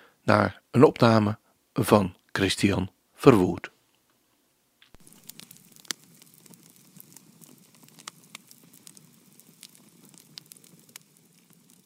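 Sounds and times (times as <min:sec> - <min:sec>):
speech: 0:00.2 - 0:03.8
campfire crackling in the desert: 0:04.8 - 0:11.8.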